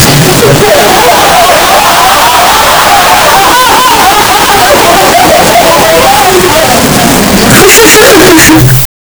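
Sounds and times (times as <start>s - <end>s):
crowd laughing in a crowded theatre: 0.0s - 8.0s.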